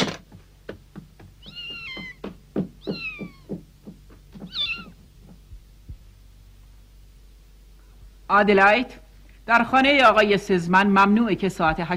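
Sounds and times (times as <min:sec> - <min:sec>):
soft regular thumps: 0:00.0 - 0:06.2
cat meowing: 0:01.4 - 0:03.6, 0:04.4 - 0:05.0
speech: 0:08.3 - 0:11.9.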